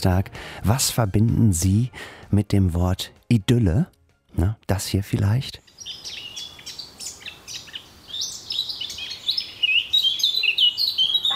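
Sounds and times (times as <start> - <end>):
speech: 0.0 - 6.2
birds chirping and twittering in a lively chorus: 5.6 - 11.3.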